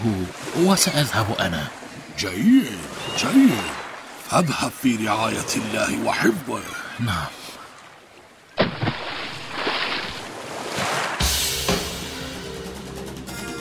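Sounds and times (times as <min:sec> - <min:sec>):
speech: 0:00.0 - 0:07.4
sea water sloshing and splashing: 0:00.0 - 0:11.4
plunge into sea water: 0:08.6 - 0:12.1.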